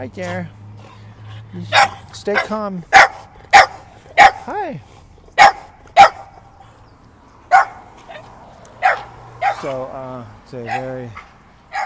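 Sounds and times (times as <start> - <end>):
speech: 0.0 - 0.6, 1.5 - 3.0, 4.5 - 5.5, 9.6 - 11.3
pug dog barking: 1.7 - 4.5, 5.4 - 6.4, 7.5 - 9.8, 10.7 - 11.8.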